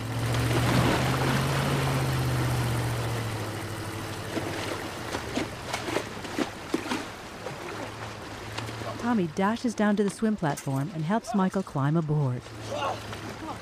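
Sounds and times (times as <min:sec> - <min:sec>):
yacht motor reversing through water: 0:00.0 - 0:13.6
knocking and splashing thuds: 0:00.1 - 0:03.2, 0:04.0 - 0:09.2
speech: 0:09.1 - 0:13.6.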